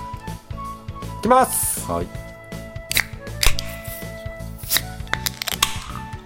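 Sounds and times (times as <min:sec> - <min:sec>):
speech: 0:01.2 - 0:02.2
German beer bottles being opened: 0:02.9 - 0:06.2.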